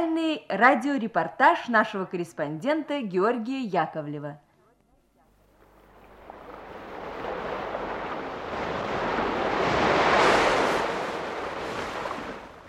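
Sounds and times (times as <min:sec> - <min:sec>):
speech: 0:00.1 - 0:04.4
sea waves washing and splashing: 0:05.5 - 0:12.6.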